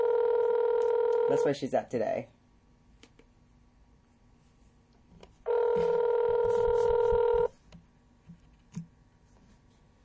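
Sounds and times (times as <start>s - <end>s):
outgoing phone ringback tone on a phone line: 0.0s - 1.5s, 5.5s - 7.5s
speech: 1.3s - 2.4s.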